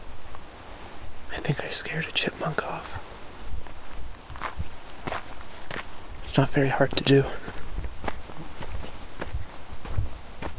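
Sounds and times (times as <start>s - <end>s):
leaves and twigs rustling underfoot: 0.0s - 10.5s
speech: 1.5s - 3.1s, 6.4s - 7.5s
footsteps crunching on forest ground: 3.1s - 10.5s.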